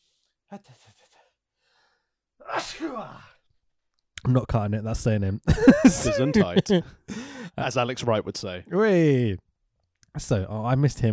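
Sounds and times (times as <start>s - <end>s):
speech: 0.5s - 1.0s, 2.4s - 3.3s, 4.2s - 9.4s, 10.1s - 11.1s
person sneezing: 2.4s - 3.4s
laughter: 5.5s - 7.0s
short halting breaths: 7.0s - 7.6s.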